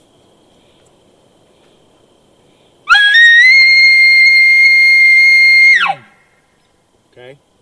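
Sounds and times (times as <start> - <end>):
high-pitched aggressive challenge call made to draw a bull: 2.9 - 6.2.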